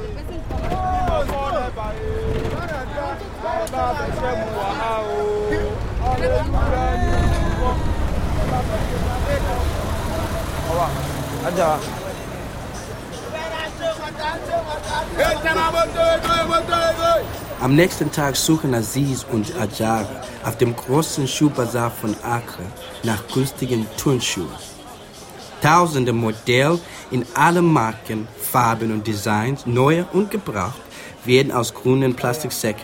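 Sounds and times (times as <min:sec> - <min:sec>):
rattly slow-moving bus engine rumble in city traffic jam: 0:00.0 - 0:25.5
many people chattering loudly on board and in busy traffic: 0:00.0 - 0:32.8
speech: 0:10.7 - 0:12.0, 0:14.8 - 0:24.8, 0:25.6 - 0:32.8.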